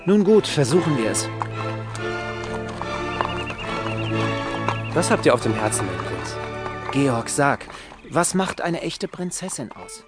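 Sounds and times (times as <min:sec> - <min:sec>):
speech: 0:00.0 - 0:01.6, 0:05.0 - 0:10.0
horse hooves clip-clopping: 0:00.0 - 0:10.0
horse neighing: 0:00.4 - 0:08.3.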